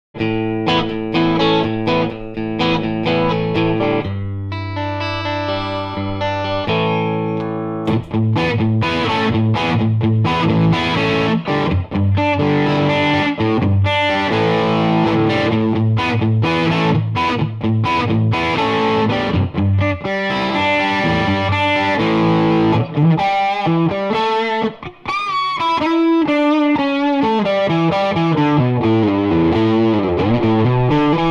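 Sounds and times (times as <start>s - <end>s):
guitar amp tone from clean to mean: 0.2s - 31.3s.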